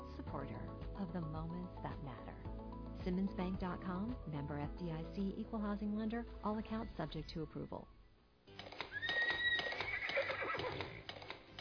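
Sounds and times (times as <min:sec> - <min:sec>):
speech: 0:01.0 - 0:08.0
horse hooves clip-clopping: 0:08.5 - 0:11.6
horse neighing: 0:08.9 - 0:11.1.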